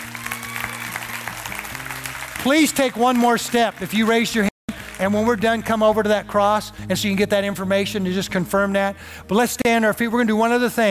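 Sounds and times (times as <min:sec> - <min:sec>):
crowd applauding after a prayer: 0:00.0 - 0:05.8
speech: 0:02.4 - 0:10.8.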